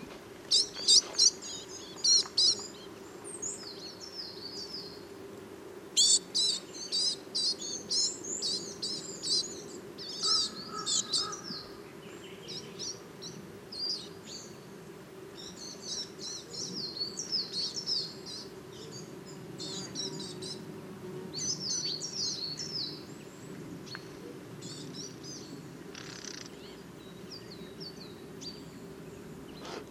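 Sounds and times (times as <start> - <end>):
low outdoor hum: 0.0 - 29.9
young coal tits calling: 0.5 - 5.1, 6.0 - 14.7, 15.4 - 20.7, 21.3 - 29.9
brambling calls: 10.2 - 11.6.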